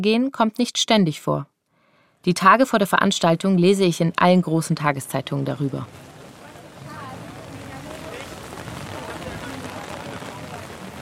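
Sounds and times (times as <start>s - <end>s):
speech: 0.0s - 1.5s, 2.2s - 6.1s
dense rain and wind roaring outdoors at a rally: 5.2s - 11.0s
indistinct voices murmuring: 5.8s - 11.0s.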